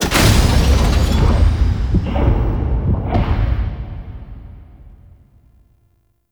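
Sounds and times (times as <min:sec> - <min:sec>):
vault heart start gameplay ambience: 0:00.0 - 0:05.6.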